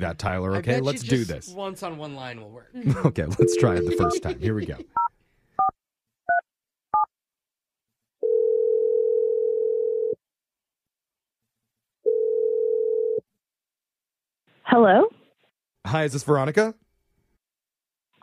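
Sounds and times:
speech: 0.0 - 5.1, 14.7 - 15.2, 15.8 - 16.8
laughter: 2.8 - 5.0
keypad dialing beeps: 3.4 - 4.3
telephone ringback tone through a phone receiver: 3.4 - 4.4, 8.2 - 10.2, 12.1 - 13.2.

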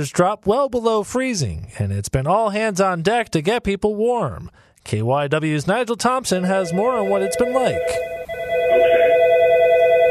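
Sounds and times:
speech: 0.0 - 8.2
telephone ringing with an electronic trill at an outreach coordination center: 6.4 - 10.0.

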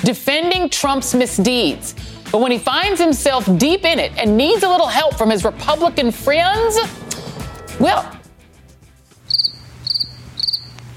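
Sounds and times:
speech: 0.0 - 7.0, 7.8 - 8.2
crickets chirping: 9.3 - 10.7.

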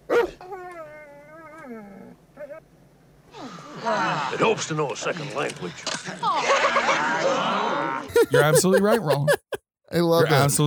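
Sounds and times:
dog barking: 0.1 - 0.4
dog yelping: 0.1 - 1.6
speech: 2.5 - 7.5, 8.2 - 10.6
laughter: 3.7 - 4.6, 6.2 - 9.6.

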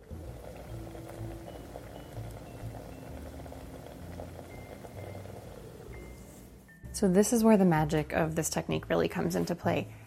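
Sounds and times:
cream simmering in a pan: 0.0 - 6.4
low hum: 0.0 - 10.0
speech: 7.0 - 10.0.

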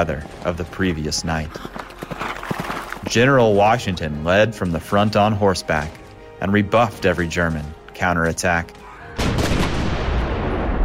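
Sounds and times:
speech: 0.0 - 1.8, 3.0 - 9.3
cannon fire: 9.2 - 10.8.

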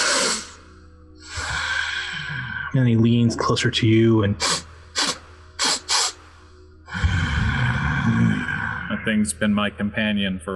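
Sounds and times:
voice imitating deep sniffs through the nose: 0.0 - 0.6, 1.2 - 2.6, 4.4 - 8.8
speech: 2.7 - 4.6, 9.0 - 10.5.

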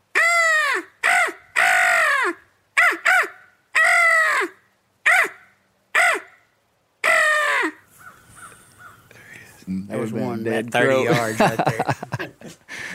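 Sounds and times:
voice imitating crow caws to call crows in: 0.1 - 6.4, 7.0 - 9.1
speech: 9.9 - 12.9
laughter: 10.9 - 12.9.

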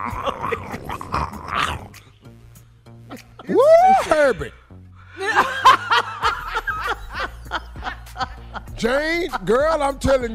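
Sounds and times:
speech: 0.0 - 1.0, 4.2 - 4.6, 8.8 - 10.3
laughter: 0.0 - 1.1, 5.1 - 10.0
voice imitating koala bears mating with throaty growls and grunts: 0.0 - 2.1.

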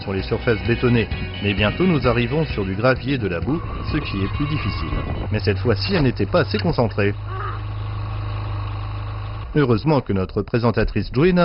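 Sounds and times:
speech: 0.1 - 7.5, 9.5 - 11.4
motorcycle engine idling while being warmed up: 2.0 - 10.0.

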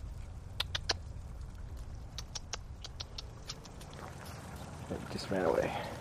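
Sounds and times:
light rain: 0.0 - 5.9
steady low outdoor rumble: 0.0 - 5.9
chipmunk giving sharp high chips: 0.6 - 1.1, 2.0 - 4.4
speech: 5.2 - 5.9.

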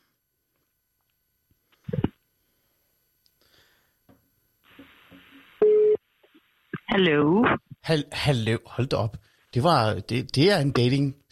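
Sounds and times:
electronic telephone tone as a radio host phones a guest: 5.6 - 6.0
speech: 7.0 - 11.3.

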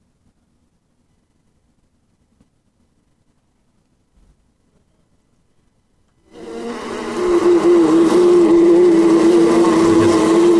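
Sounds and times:
bees buzzing in a beehive inside a house wall: 6.4 - 10.5.

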